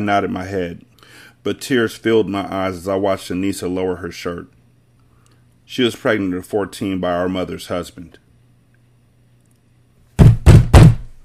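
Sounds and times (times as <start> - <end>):
speech: 0.0 - 4.6, 5.7 - 8.2
firm knocks on a wooden door: 10.2 - 11.1.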